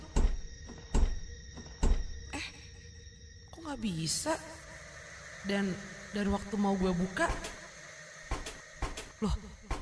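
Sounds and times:
bedroom door being pushed shut with a dull thud and rattle: 0.0s - 2.3s, 8.3s - 9.7s
speech: 3.7s - 4.6s, 5.4s - 7.6s, 9.2s - 9.5s.

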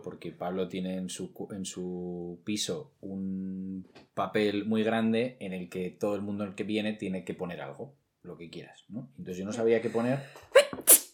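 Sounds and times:
speech: 0.0s - 11.0s
single loud sneeze: 10.6s - 11.1s.

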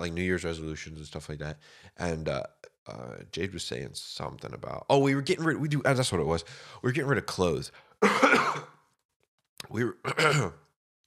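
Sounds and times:
speech: 0.0s - 8.8s, 9.7s - 10.6s
person coughing and clearing throat into microphone: 8.0s - 8.8s, 10.1s - 10.6s.

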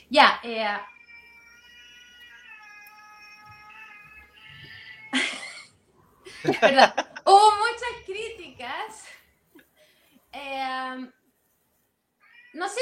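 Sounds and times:
speech: 0.1s - 1.0s, 6.4s - 9.2s, 10.4s - 11.2s, 12.6s - 12.8s
cat meowing: 0.7s - 5.2s, 12.2s - 12.8s
person laughing: 5.1s - 5.7s, 6.3s - 7.4s.

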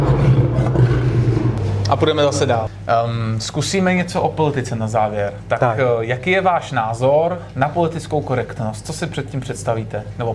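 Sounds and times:
lion roaring: 0.0s - 2.7s
speech: 2.0s - 10.3s.

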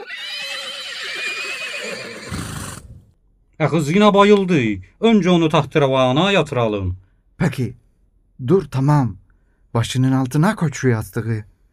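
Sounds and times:
horse neighing with a quivering whinny: 0.0s - 3.1s
speech: 3.6s - 7.8s, 8.4s - 11.5s.

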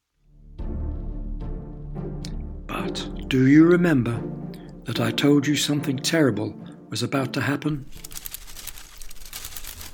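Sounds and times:
speech: 2.0s - 8.0s
plastic bag rustling as it is blown along the ground: 7.8s - 9.9s.

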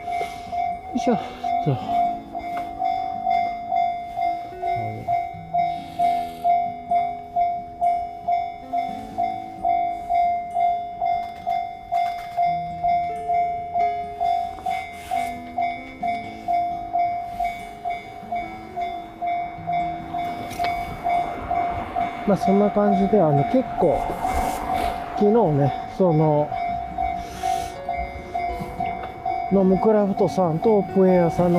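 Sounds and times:
railway crossing bell clanging: 0.0s - 31.5s
train rumbling past a railway crossing: 0.0s - 31.5s
speech: 0.9s - 2.0s, 22.4s - 24.4s, 25.2s - 26.6s, 29.5s - 31.5s.

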